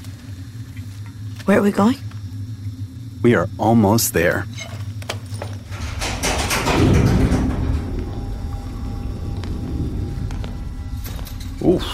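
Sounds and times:
low rumbling hum: 0:00.0 - 0:11.9
speech: 0:01.5 - 0:02.1, 0:03.2 - 0:04.8, 0:11.7 - 0:11.9
heavy faulty door grinding open: 0:05.4 - 0:11.9.

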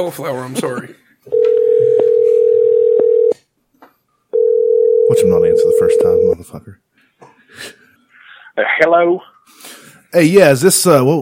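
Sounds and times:
speech: 0:00.0 - 0:01.4, 0:05.1 - 0:06.8, 0:08.6 - 0:09.3, 0:10.1 - 0:11.2
telephone dial tone while placing a call: 0:01.3 - 0:03.4, 0:04.4 - 0:06.2.

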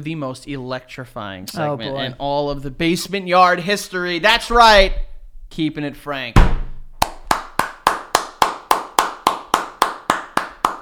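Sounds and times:
speech: 0:00.0 - 0:06.6
one person clapping hands: 0:07.0 - 0:10.8.

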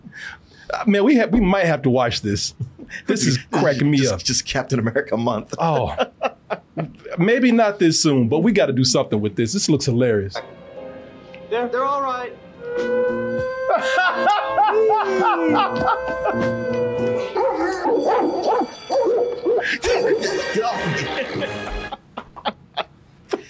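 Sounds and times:
speech: 0:00.2 - 0:06.1, 0:06.8 - 0:10.6, 0:11.5 - 0:12.3, 0:15.2 - 0:16.6
laughter: 0:04.8 - 0:07.2, 0:13.3 - 0:18.4, 0:19.1 - 0:23.4
several dogs barking and howling in a played movie clip: 0:12.6 - 0:21.5.

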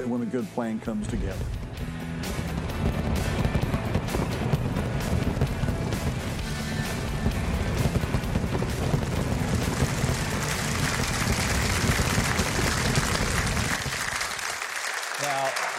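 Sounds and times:
speech: 0:00.0 - 0:01.9
fireworks explosions at a large fireworks show: 0:01.1 - 0:14.7.

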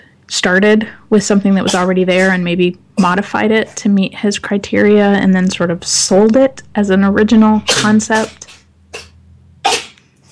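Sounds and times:
speech: 0:00.3 - 0:08.4
cat sneezing: 0:01.6 - 0:02.4, 0:07.7 - 0:10.3.

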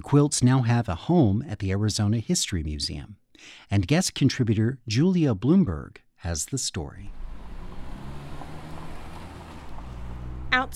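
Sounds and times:
speech: 0:00.1 - 0:07.2, 0:10.5 - 0:10.7
street traffic with cars passing at a moderate distance: 0:07.1 - 0:10.7.

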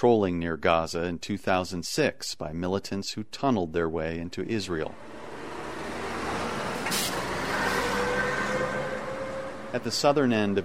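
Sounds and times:
speech: 0:00.0 - 0:05.3, 0:09.7 - 0:10.6
heavy trucks loaded with building materials idling at a border crossing terminal: 0:04.7 - 0:10.6
truck air brake hiss: 0:06.8 - 0:08.0.

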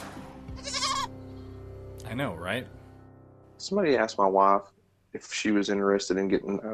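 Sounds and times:
goat bleating: 0:00.6 - 0:01.1
speech: 0:02.1 - 0:02.8, 0:03.6 - 0:06.7.

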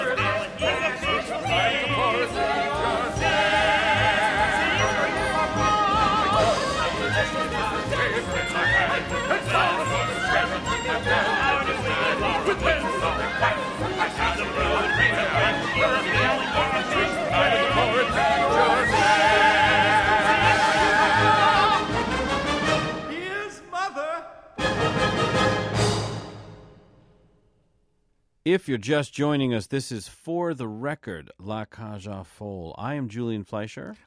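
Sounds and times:
full busy orchestra: 0:00.0 - 0:23.8, 0:24.6 - 0:27.0
show-tune ensemble number from a cast recording: 0:00.0 - 0:24.5
speech: 0:28.5 - 0:34.0.

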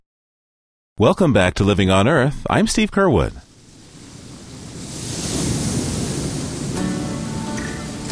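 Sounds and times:
speech: 0:01.0 - 0:03.4
ocean surf breaking on a beach: 0:03.0 - 0:08.1.

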